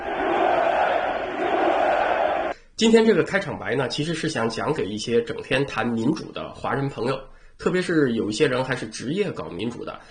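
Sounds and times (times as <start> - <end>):
stadium crowd cheering and chanting USA at an American football game: 0.0 - 2.5
speech: 2.8 - 10.0.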